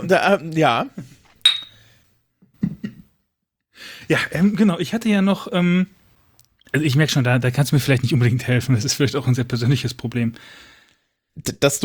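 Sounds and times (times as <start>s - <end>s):
speech: 0.0s - 1.0s, 3.8s - 6.0s, 6.7s - 10.7s, 11.4s - 11.8s
wine glasses clinking in a toast: 1.4s - 1.9s.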